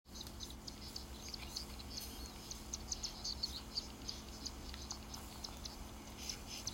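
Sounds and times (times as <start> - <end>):
plain prinia calling: 0.1 - 6.7.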